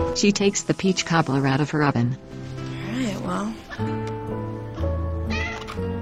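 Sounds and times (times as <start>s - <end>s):
speech: 0.2s - 2.3s, 3.2s - 4.1s
cat meowing: 5.3s - 5.8s.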